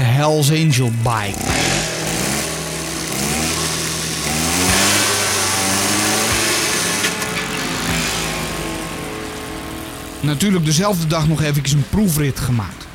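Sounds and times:
speech: 0:00.2 - 0:01.9, 0:10.2 - 0:12.8
small motor engine of a homemade motorized children's kick scooter revving on a public road: 0:01.2 - 0:10.6.

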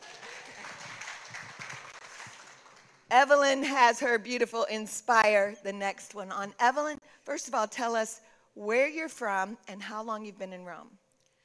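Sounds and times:
audience applauding: 0:00.0 - 0:03.1
speech: 0:03.1 - 0:11.0.

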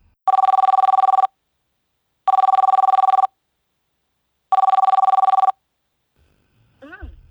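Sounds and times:
phone ringback tone: 0:00.3 - 0:01.3, 0:02.3 - 0:03.3, 0:04.5 - 0:05.6.

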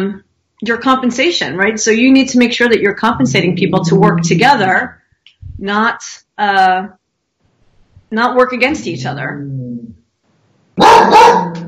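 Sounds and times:
speech: 0:00.0 - 0:07.0, 0:08.1 - 0:10.0, 0:10.8 - 0:11.6
dog barking harshly: 0:10.8 - 0:11.6.

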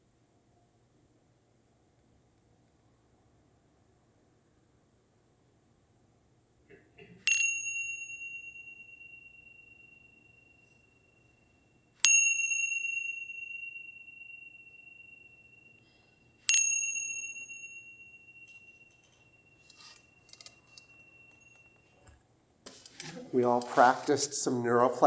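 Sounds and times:
meditation bell ringing: 0:07.2 - 0:22.1
speech: 0:23.3 - 0:25.0.

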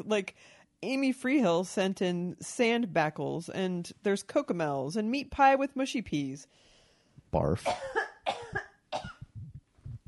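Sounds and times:
speech: 0:00.0 - 0:06.7, 0:07.3 - 0:09.1
person coughing: 0:07.6 - 0:09.4
throat clearing: 0:07.7 - 0:09.4.

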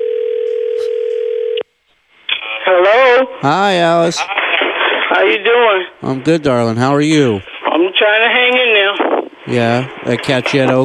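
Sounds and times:
buzzy electronic tone from a malfunctioning cheap phone during a call: 0:00.0 - 0:01.6
speech: 0:02.7 - 0:04.4, 0:05.1 - 0:10.8.

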